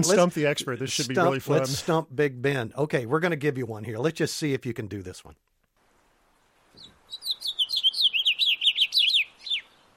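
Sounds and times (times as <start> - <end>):
speech: 0.0 - 5.5
house finch singing a rapid warbling run of bright notes: 6.8 - 9.9.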